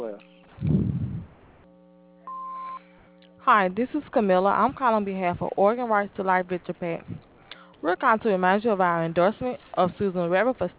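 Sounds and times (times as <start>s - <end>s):
single steady electronic beep from a home answering machine: 2.3s - 2.8s
speech: 3.5s - 10.7s.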